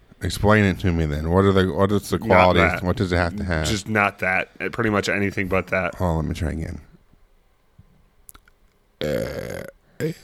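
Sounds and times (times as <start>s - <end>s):
speech: 0.2s - 6.9s
person burping: 9.0s - 10.2s.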